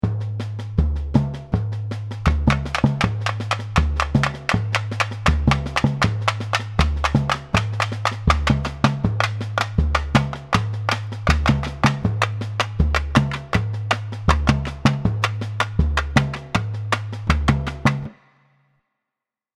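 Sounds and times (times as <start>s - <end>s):
tamborim break in samba: 1.2s - 18.5s.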